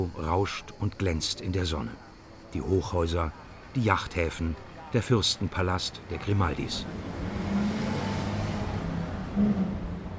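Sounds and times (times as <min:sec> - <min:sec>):
speech: 0:00.0 - 0:07.2, 0:09.4 - 0:09.7
city street traffic: 0:00.0 - 0:10.1
vehicle passing by: 0:06.7 - 0:10.1.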